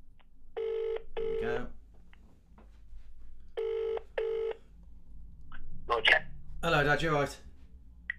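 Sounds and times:
phone ringback tone: 0:00.6 - 0:01.4, 0:03.6 - 0:04.6
speech: 0:06.0 - 0:07.4.

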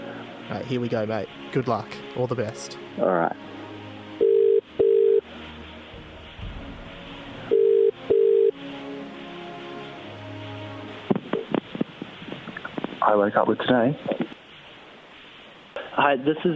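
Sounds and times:
line hiss: 0:00.0 - 0:16.5
speech: 0:00.5 - 0:03.6, 0:13.1 - 0:14.2, 0:16.0 - 0:16.5
telephone ringback tones: 0:04.2 - 0:05.2, 0:07.5 - 0:08.5.

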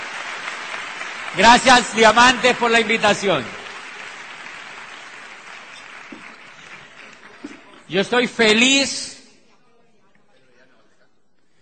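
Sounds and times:
audience applause at a convention at night: 0:00.0 - 0:07.9
speech: 0:01.3 - 0:03.6, 0:07.9 - 0:09.1.

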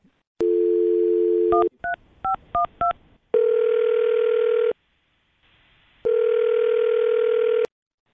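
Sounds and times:
telephone dial tone: 0:00.4 - 0:01.7, 0:03.4 - 0:04.8, 0:06.1 - 0:07.7.

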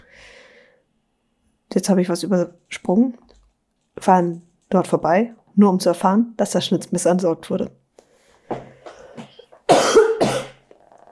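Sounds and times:
speech: 0:01.8 - 0:03.3, 0:04.0 - 0:07.8
person coughing: 0:09.7 - 0:10.7.

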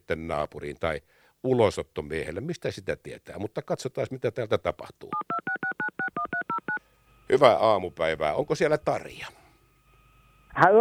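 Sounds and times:
speech: 0:00.1 - 0:05.6, 0:07.3 - 0:09.4, 0:10.6 - 0:10.8
touch-tone beeps of a telephone number being dialed: 0:05.2 - 0:06.8.

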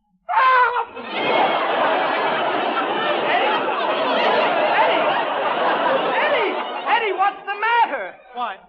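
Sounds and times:
man screaming: 0:00.3 - 0:01.0
crowd noise: 0:00.8 - 0:08.6
audience laughter: 0:00.9 - 0:08.3.

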